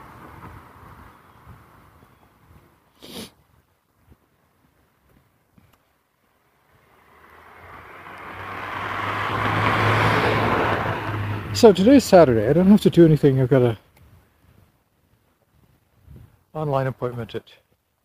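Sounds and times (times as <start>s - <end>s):
road traffic rumble: 0.0s - 17.9s
vehicle engine and tire noise roaring past: 6.6s - 12.8s
speech: 11.6s - 13.8s, 16.7s - 17.6s.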